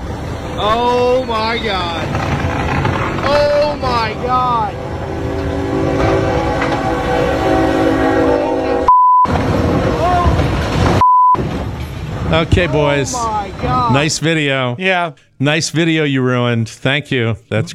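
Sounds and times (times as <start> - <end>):
train rumbling loudly past: 0.0 - 13.9
speech: 0.6 - 2.3, 12.3 - 17.7
train horn sounding in sustained wavering blasts: 4.2 - 8.9.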